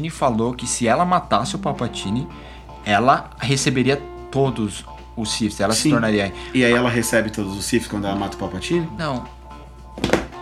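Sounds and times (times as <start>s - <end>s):
speech: 0.0s - 9.4s
phone dropping onto a table: 10.0s - 10.4s.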